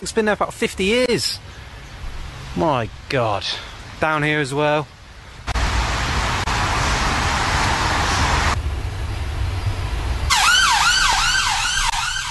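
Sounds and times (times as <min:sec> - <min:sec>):
speech: 0:00.0 - 0:01.6, 0:02.6 - 0:05.0
street traffic noise in Soho: 0:00.0 - 0:12.2
ambulance siren wailing: 0:10.3 - 0:12.2.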